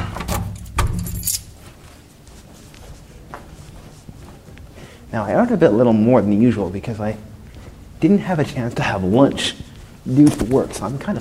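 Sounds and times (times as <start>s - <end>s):
keys jangling: 0.2s - 2.0s
speech: 5.2s - 7.3s, 8.0s - 11.1s.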